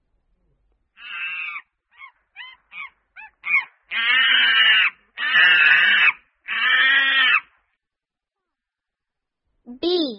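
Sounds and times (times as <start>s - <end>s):
monkey calls: 1.0s - 7.5s.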